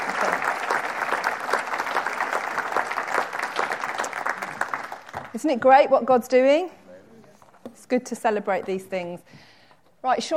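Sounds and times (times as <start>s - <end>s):
room full of people applauding: 0.0s - 5.4s
speech: 5.4s - 6.8s, 7.9s - 10.3s.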